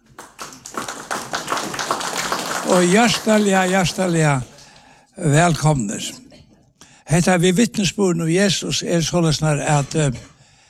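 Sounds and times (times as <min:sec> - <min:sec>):
audience clapping: 0:00.0 - 0:04.9
speech: 0:02.7 - 0:04.5, 0:05.2 - 0:06.2, 0:07.1 - 0:10.3.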